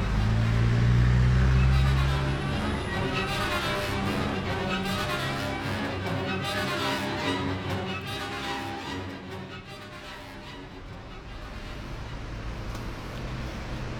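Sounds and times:
road noise and passing vehicles in London traffic: 0:00.0 - 0:06.1, 0:10.3 - 0:13.9
open-top bus deep engine drone in London traffic: 0:00.0 - 0:07.2, 0:09.6 - 0:13.9.

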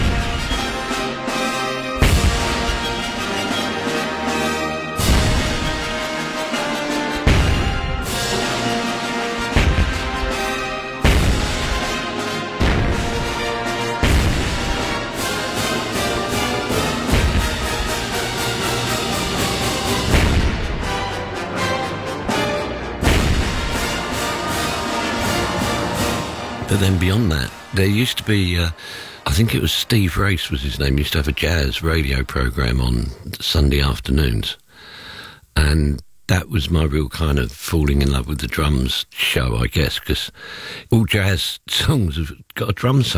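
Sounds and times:
booming cannon shots in an orchestral overture: 0:00.0 - 0:04.0, 0:05.0 - 0:21.1, 0:23.0 - 0:26.1
full orchestra playing a grand sweeping passage: 0:00.0 - 0:29.3
speech: 0:26.8 - 0:35.0, 0:35.6 - 0:43.1.

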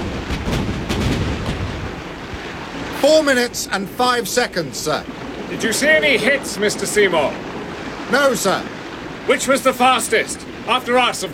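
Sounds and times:
warship's great guns firing at targets during a squadron gunnery exercise at sea: 0:00.0 - 0:02.5
speech: 0:03.0 - 0:07.5, 0:08.1 - 0:11.3.

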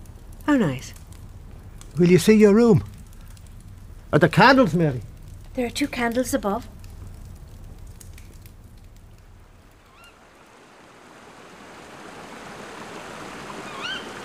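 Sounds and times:
speech: 0:00.5 - 0:01.0, 0:02.0 - 0:02.9, 0:04.1 - 0:06.7
river flowing: 0:09.4 - 0:14.2
bird chirping: 0:13.5 - 0:14.2.

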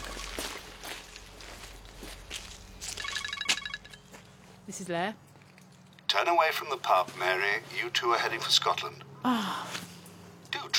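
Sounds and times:
footsteps walking at a steady pace: 0:00.0 - 0:05.9
low hum: 0:00.0 - 0:10.7
electronic beeping tone: 0:02.9 - 0:04.1
speech: 0:04.7 - 0:05.3, 0:06.1 - 0:09.8.

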